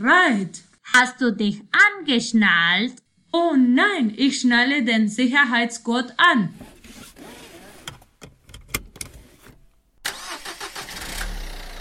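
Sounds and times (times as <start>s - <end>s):
speech: 0.0s - 7.4s
car engine cranking and settling into a rumbling idle: 6.6s - 11.8s.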